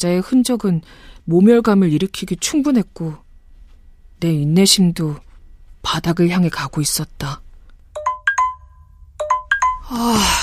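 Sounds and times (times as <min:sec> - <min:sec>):
speech: 0:00.0 - 0:03.2, 0:04.2 - 0:07.4, 0:09.9 - 0:10.4
phone ringtone with bright chiming electronic tones: 0:07.9 - 0:10.0.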